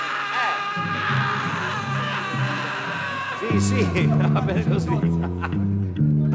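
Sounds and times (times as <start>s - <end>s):
person screaming as a sound test: 0.0s - 4.2s
laughter: 0.0s - 6.2s
speech: 3.5s - 5.8s.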